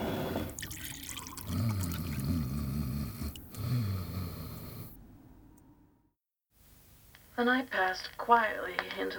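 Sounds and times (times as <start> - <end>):
person gulping water: 0.4 - 3.7
water poured from a pitcher: 0.5 - 2.3
speech: 7.4 - 9.1.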